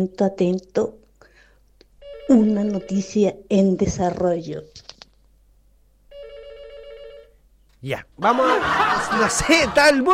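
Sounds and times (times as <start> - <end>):
speech: 0.0 - 1.0, 2.3 - 4.8, 7.8 - 10.1
telephone ringing with an incoming call: 2.0 - 3.4, 6.1 - 7.4
laughter: 8.2 - 10.1.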